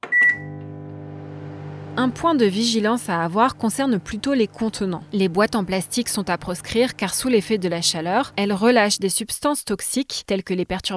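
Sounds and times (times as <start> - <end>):
short beep: 0.0 - 0.6
microwave oven running with low electrical hum: 0.0 - 8.7
speech: 2.0 - 10.9.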